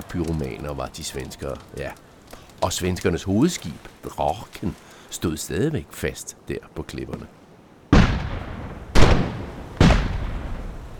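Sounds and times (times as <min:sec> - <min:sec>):
speech: 0:00.1 - 0:07.4
heavy booms of cannon fire: 0:07.9 - 0:10.9.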